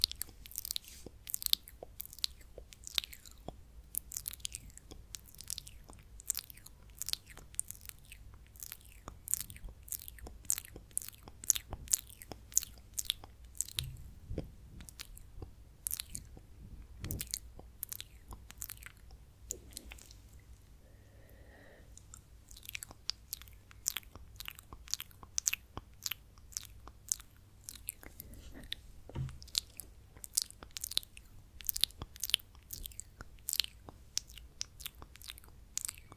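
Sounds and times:
wet mouth sounds clicking and smacking: 0.0s - 14.1s, 14.8s - 20.2s, 22.0s - 28.2s, 29.3s - 36.1s
quiet low hum: 0.0s - 36.1s
soft hushed movement: 13.6s - 23.1s, 27.7s - 30.7s.

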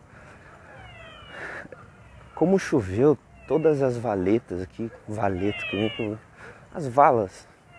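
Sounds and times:
outdoor noise: 0.0s - 7.7s
frog calling: 0.7s - 4.2s, 5.3s - 6.1s
speech: 2.4s - 7.5s.

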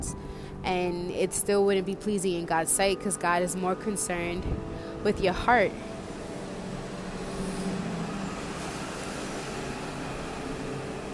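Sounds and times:
speech: 0.0s - 5.9s
heavy vehicle rumbling past outdoors: 4.2s - 11.1s.

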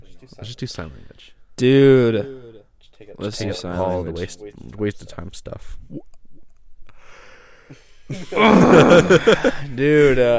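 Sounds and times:
speech: 0.2s - 2.4s, 3.0s - 6.2s, 7.7s - 10.3s
laughter: 8.1s - 9.9s
person yawning with a voiced groan: 8.3s - 9.2s.

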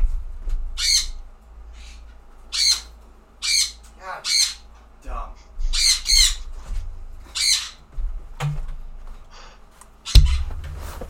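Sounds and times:
low hum: 0.0s - 11.0s
pet birds squawking and calling to each other: 0.8s - 4.8s, 5.5s - 7.9s
short knock: 10.2s - 11.0s.

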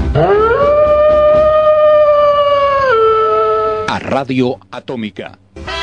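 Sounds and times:
eerie werewolf-style howl: 0.1s - 3.9s
speech: 4.1s - 5.7s.

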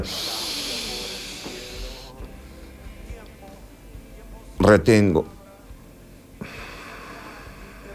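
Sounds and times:
speech: 0.0s - 0.3s, 4.6s - 5.4s
slow deep breath in a yoga breathing demonstration: 0.0s - 3.0s, 6.4s - 7.9s.

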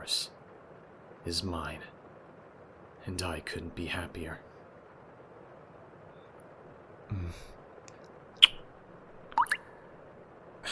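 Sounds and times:
speech: 0.0s - 0.4s, 1.2s - 2.0s, 3.0s - 4.5s, 7.1s - 7.6s
water dripping from leaking ceiling: 9.3s - 9.6s.

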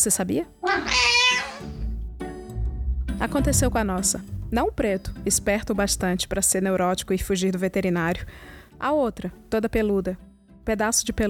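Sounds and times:
speech: 0.0s - 1.1s, 3.2s - 11.2s
cat meowing: 0.6s - 1.8s.

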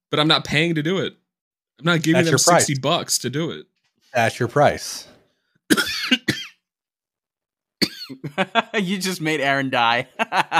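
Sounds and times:
speech: 0.1s - 1.2s, 1.8s - 5.1s, 5.7s - 6.2s, 8.2s - 10.5s
person coughing into a microphone: 5.7s - 6.6s, 7.8s - 8.4s
laughter: 8.1s - 9.0s, 10.0s - 10.5s.

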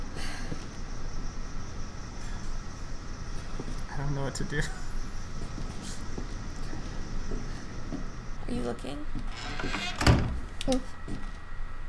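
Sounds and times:
faint steady hum: 0.0s - 11.8s
speech: 4.3s - 4.9s, 8.5s - 11.2s
door closing thunk: 9.3s - 10.4s.

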